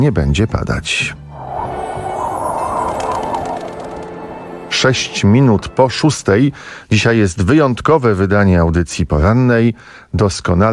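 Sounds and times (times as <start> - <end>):
speech: 0.0 - 1.2, 4.8 - 10.7
rooster crowing: 1.4 - 5.2.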